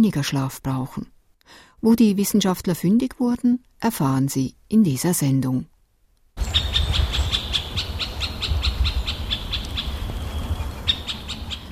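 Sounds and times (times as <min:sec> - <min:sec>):
speech: 0:00.0 - 0:05.7
middle spotted woodpecker calling: 0:06.4 - 0:11.7.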